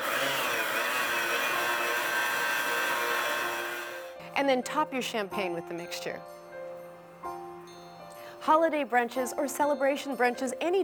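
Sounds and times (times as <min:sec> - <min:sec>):
blender blending orange juice, sugar, mint leaves and lime zest: 0:00.0 - 0:04.2
speech: 0:04.4 - 0:06.4, 0:08.4 - 0:10.8.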